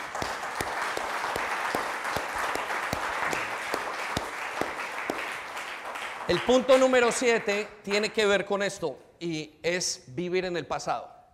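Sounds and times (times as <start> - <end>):
audience applause: 0.0 - 7.2
speech: 6.3 - 11.2.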